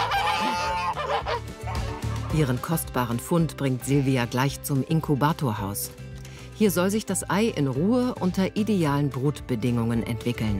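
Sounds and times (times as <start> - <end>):
geese honking: 0.0 - 2.4
speech: 2.3 - 6.0, 6.6 - 10.5.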